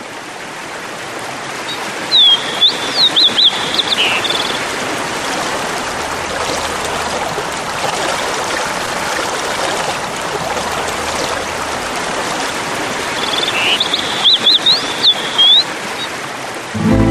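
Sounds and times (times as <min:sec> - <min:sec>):
stream of water rushing downhill: 0:00.0 - 0:17.0
bird chirps: 0:02.1 - 0:04.6, 0:13.2 - 0:16.1.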